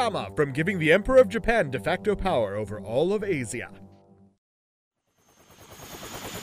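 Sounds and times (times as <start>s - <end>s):
speech: 0.0s - 3.8s
helicopter engine and rotors whirring: 5.1s - 6.4s.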